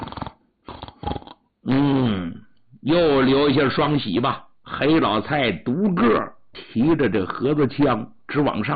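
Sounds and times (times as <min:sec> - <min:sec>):
person imitating snoring: 0:00.0 - 0:02.4
speech: 0:02.8 - 0:08.7.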